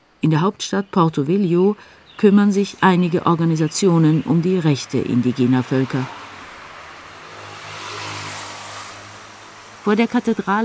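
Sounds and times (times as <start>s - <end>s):
broadband road and tire noise: 0.0s - 10.6s
speech: 0.2s - 6.2s, 9.8s - 10.6s
car driving past: 4.8s - 10.6s.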